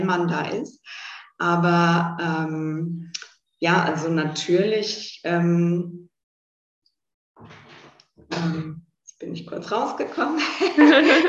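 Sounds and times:
speech: 0.1s - 6.1s, 8.3s - 11.2s
door swinging open with a rattling rush: 7.4s - 8.0s
door squeaking while swinging open: 7.4s - 8.3s
laughter: 10.4s - 11.2s.

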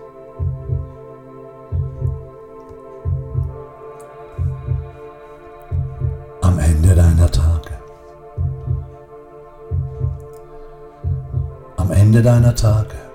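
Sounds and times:
slow steady heartbeat thumping in double beats: 0.4s - 1.1s, 1.7s - 2.4s, 3.0s - 3.7s, 4.4s - 5.0s, 5.7s - 9.1s, 9.7s - 10.3s, 11.0s - 11.8s
speech: 12.1s - 13.0s.

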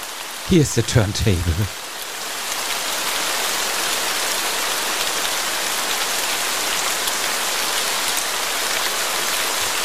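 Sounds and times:
rain pattering on a hard surface: 0.0s - 9.8s
speech: 0.5s - 1.8s.

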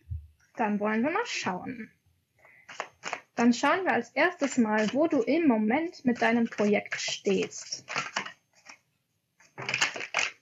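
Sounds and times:
speech: 0.6s - 2.0s, 3.4s - 8.0s
tarot cards flipping during a shuffle: 2.7s - 3.6s, 4.4s - 5.2s, 6.1s - 8.8s, 9.4s - 10.4s.

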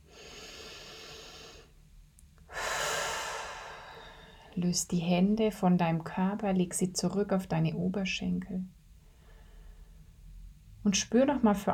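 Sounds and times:
deep breath drawn and released: 0.0s - 1.7s, 2.5s - 4.6s, 9.0s - 10.1s
speech: 4.6s - 8.8s, 10.8s - 11.7s.

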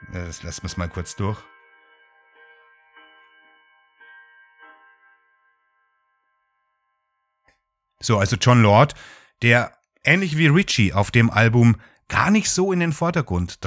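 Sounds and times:
large bells ringing in Rome: 0.0s - 6.0s
speech: 0.2s - 1.5s, 8.0s - 13.6s.

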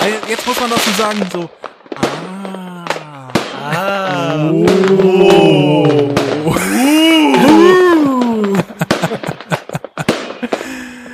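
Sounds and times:
large New Year's firework rocket exploding in bangs and crackles: 0.0s - 11.1s
speech: 0.3s - 2.2s, 4.4s - 5.1s
person exclaiming: 2.0s - 8.9s
laughter: 2.8s - 11.1s.

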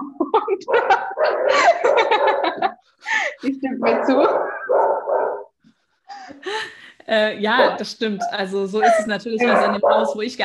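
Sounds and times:
laughter: 0.0s - 3.4s
speech: 0.6s - 5.3s, 6.4s - 10.4s
dog barking and yipping: 0.7s - 2.7s, 3.8s - 5.5s, 9.4s - 10.2s.

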